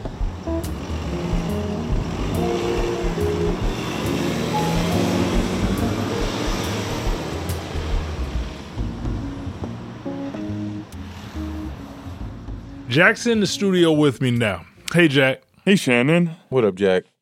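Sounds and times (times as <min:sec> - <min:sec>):
large diesel city bus engine idling at a stop: 0:00.0 - 0:10.6
speech: 0:13.0 - 0:17.1.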